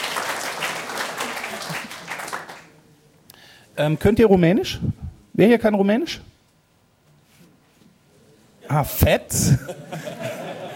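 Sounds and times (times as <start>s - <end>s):
crowd applauding: 0.0s - 2.7s
laughter: 1.3s - 2.2s, 9.3s - 10.7s
speech: 3.8s - 6.3s, 8.7s - 10.4s.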